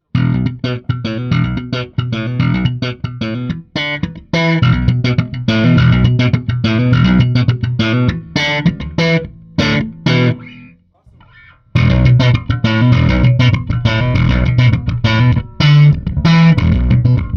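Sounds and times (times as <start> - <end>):
bass guitar through a Hiwatt amplifier: 0.0 - 17.3.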